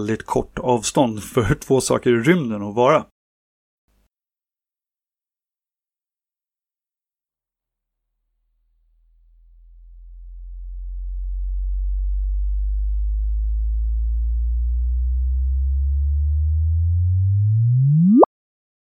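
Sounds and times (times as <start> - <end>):
speech: 0.0 - 3.1
sonified neutron star merger low tone rising into high chirp: 8.8 - 18.3.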